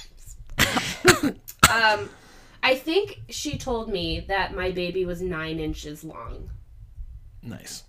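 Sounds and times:
person coughing: 0:00.6 - 0:02.2
speech: 0:01.0 - 0:06.6, 0:07.4 - 0:07.8.

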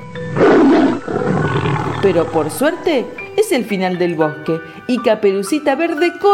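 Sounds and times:
menacing wolf roar sound effect with rumbling snarl: 0:00.2 - 0:03.0
speech: 0:02.1 - 0:06.3.

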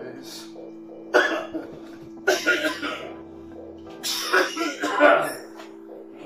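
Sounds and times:
man coughing harshly after taking a dab hit: 0:01.1 - 0:03.1, 0:04.0 - 0:05.5.

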